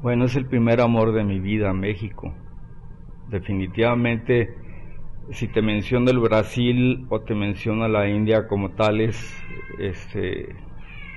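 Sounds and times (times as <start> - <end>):
speech: 0.0 - 2.5, 3.3 - 4.6, 5.3 - 10.7
cat meowing: 9.2 - 10.1, 10.8 - 11.1.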